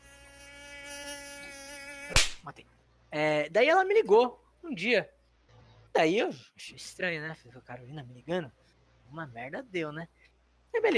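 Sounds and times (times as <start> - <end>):
mosquito whining close to the microphone: 0.0 - 2.4
sharp smack: 2.1 - 2.4
speech: 2.1 - 5.2, 6.0 - 10.9.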